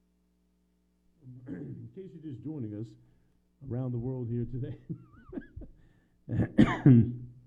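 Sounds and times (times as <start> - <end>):
person clearing throat: 1.2 - 1.9, 6.3 - 7.3
speech: 1.3 - 5.5, 6.3 - 7.3
person coughing: 1.4 - 1.9, 6.3 - 7.2.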